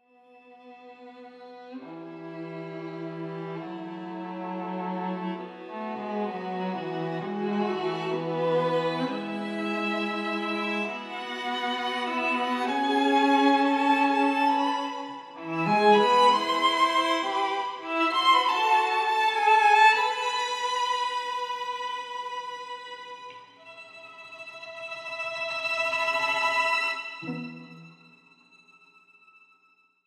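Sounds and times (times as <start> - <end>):
live string instruments playing: 0.6 - 29.5.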